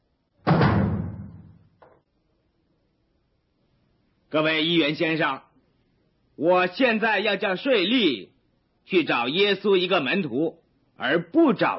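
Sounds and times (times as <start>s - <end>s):
door being shut with a heavy thud: 0.4s - 1.8s
speech: 4.3s - 5.5s, 6.4s - 11.7s.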